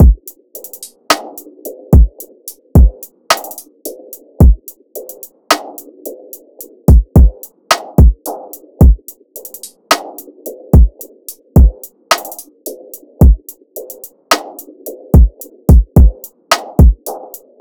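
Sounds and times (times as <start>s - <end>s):
drum loop at 109 BPM: 0.0s - 1.3s, 1.9s - 5.8s, 6.9s - 10.2s, 10.8s - 17.5s.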